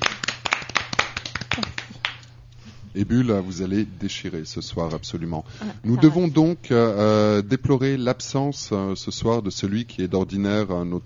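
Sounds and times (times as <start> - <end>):
audience applause at a live evening show: 0.0 - 2.2
speech: 2.9 - 11.0.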